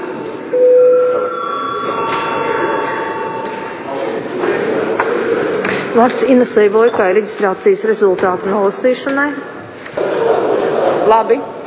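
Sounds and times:
murmur of voices: 0:00.0 - 0:11.6
bell rung in a parliament chamber: 0:00.6 - 0:04.9
speech: 0:06.0 - 0:09.6, 0:11.1 - 0:11.5.

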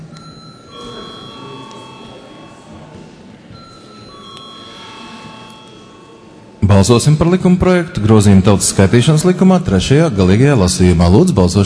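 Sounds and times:
electric bell ringing in a parliament chamber before a vote: 0:00.1 - 0:07.2
speech: 0:06.7 - 0:11.6.

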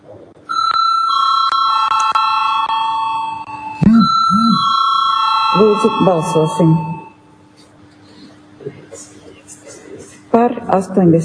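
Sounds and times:
parliamentary voting electric bell ringing: 0:00.5 - 0:07.3
speech: 0:05.6 - 0:07.0, 0:10.7 - 0:11.2.

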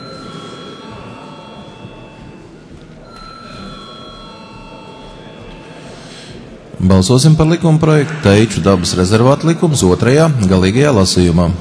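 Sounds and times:
parliament voting call electric bell ringing: 0:00.0 - 0:06.2
murmur of chatter in a parliament: 0:00.0 - 0:11.5
speech: 0:06.8 - 0:11.5.

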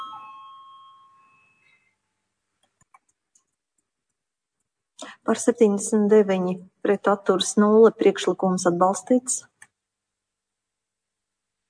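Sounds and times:
bell rung to call a parliamentary vote: 0:00.0 - 0:01.9
speech: 0:05.2 - 0:09.5.

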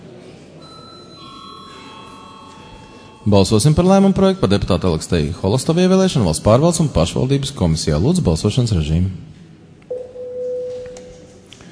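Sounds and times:
constant low noise: 0:00.0 - 0:11.7
bell rung by the chair during a parliament session: 0:00.6 - 0:05.0
speech: 0:03.3 - 0:09.4.

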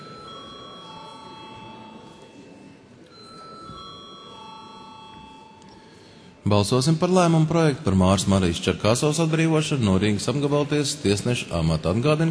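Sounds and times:
electronic bell ringing in a parliament chamber before a vote: 0:00.0 - 0:06.4
faint murmur in a parliament chamber: 0:00.0 - 0:06.5
speech: 0:06.5 - 0:12.2.

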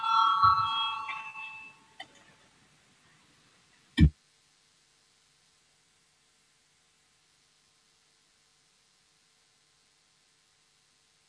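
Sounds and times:
electronic voting bell signal in a parliament chamber before a vote: 0:00.0 - 0:02.0.

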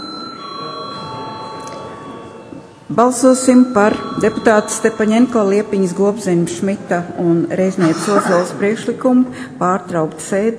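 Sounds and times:
parliament chamber electric bell rung before a vote: 0:00.0 - 0:06.1
speech: 0:02.9 - 0:10.5.

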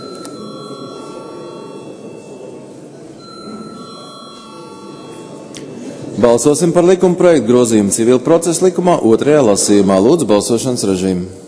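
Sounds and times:
parliamentary voting call bell ringing: 0:00.0 - 0:07.2
speech: 0:06.2 - 0:11.4.

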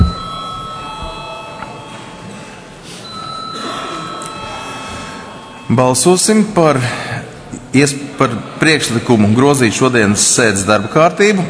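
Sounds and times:
electric bell ringing in a parliament chamber to call a vote: 0:00.0 - 0:02.4, 0:03.0 - 0:06.5
murmur: 0:00.0 - 0:11.4
speech: 0:05.7 - 0:11.4.

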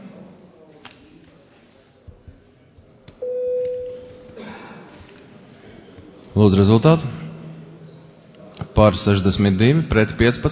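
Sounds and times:
low murmur of a large hall: 0:00.0 - 0:10.5
parliamentary voting bell electronic tone: 0:03.2 - 0:04.1
speech: 0:06.4 - 0:07.2, 0:08.8 - 0:10.5.

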